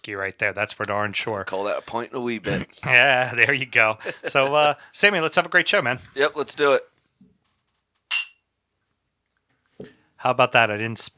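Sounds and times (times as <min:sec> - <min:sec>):
speech: 0:00.0 - 0:06.9, 0:09.8 - 0:11.1
glasses clinking in a toast: 0:08.1 - 0:08.4.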